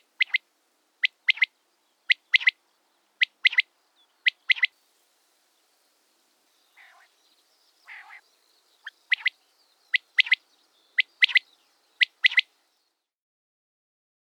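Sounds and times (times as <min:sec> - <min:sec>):
common quail song: 0:00.0 - 0:13.0.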